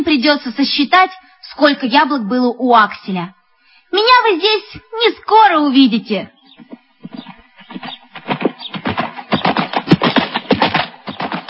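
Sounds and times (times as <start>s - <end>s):
speech: 0.0s - 6.7s
horse galloping through a gate over stony ground: 6.6s - 11.4s.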